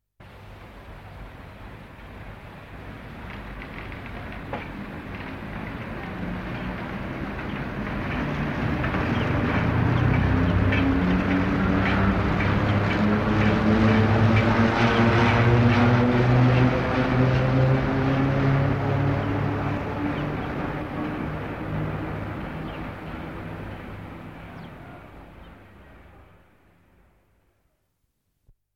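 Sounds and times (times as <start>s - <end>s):
electric train or metro: 0.4s - 26.5s.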